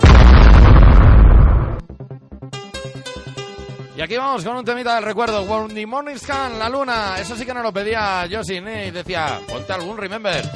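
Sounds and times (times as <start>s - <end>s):
bomb explosion with deep rumbling roar: 0.0s - 1.8s
speech: 4.0s - 10.5s.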